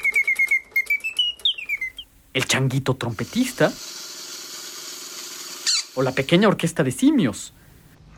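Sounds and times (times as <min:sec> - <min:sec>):
mechanical singing bird automaton whistle trilling: 0:00.0 - 0:02.1, 0:04.9 - 0:06.5
speech: 0:02.4 - 0:03.9, 0:06.0 - 0:07.6.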